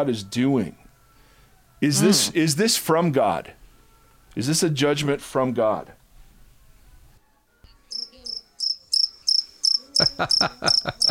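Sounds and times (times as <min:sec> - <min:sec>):
speech: 0:00.0 - 0:00.8, 0:01.8 - 0:03.6, 0:04.4 - 0:06.0, 0:10.1 - 0:11.0
laughter: 0:01.9 - 0:02.4, 0:09.8 - 0:11.0
crickets chirping: 0:07.9 - 0:11.0.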